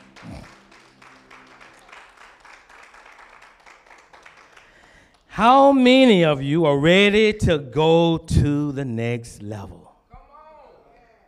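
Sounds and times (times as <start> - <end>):
audience applauding with hand clapping: 0.0 - 5.3
speech: 5.4 - 9.8.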